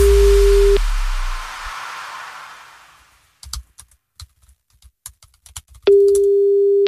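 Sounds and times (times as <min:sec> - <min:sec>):
soft hiss: 0:00.0 - 0:03.8
electronic telephone ringing tone before voicemail: 0:05.9 - 0:06.8.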